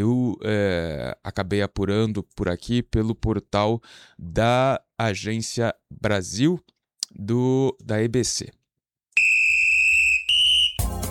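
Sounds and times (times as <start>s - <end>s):
speech: 0.0s - 8.6s
high-pitched whistle blasts: 9.2s - 11.0s.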